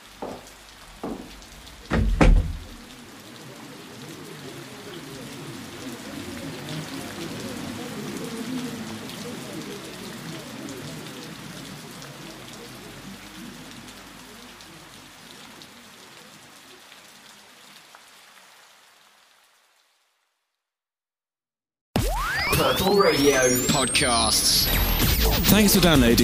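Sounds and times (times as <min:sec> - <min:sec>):
steady rain falling in a dense even hiss: 0:00.0 - 0:20.5, 0:22.6 - 0:26.2
sharp thumps: 0:00.2 - 0:02.8
speech: 0:22.6 - 0:26.2.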